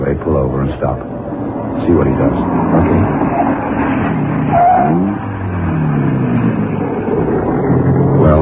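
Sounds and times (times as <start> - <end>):
speech: 0.0 - 5.3
car engine running as the vehicle drives: 0.0 - 8.3.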